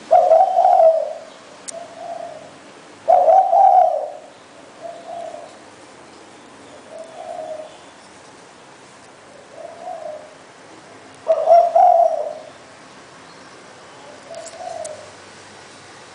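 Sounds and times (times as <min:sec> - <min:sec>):
spotted dove cooing: 0:00.0 - 0:05.6, 0:06.8 - 0:07.8, 0:09.3 - 0:10.4, 0:11.2 - 0:12.5, 0:14.1 - 0:15.2
steady background hiss: 0:00.0 - 0:16.1.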